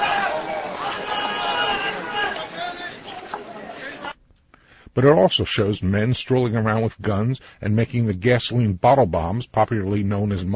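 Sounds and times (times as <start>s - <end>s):
large protest crowd chanting Allahu Akbar: 0.0s - 4.2s
speech: 5.0s - 10.5s.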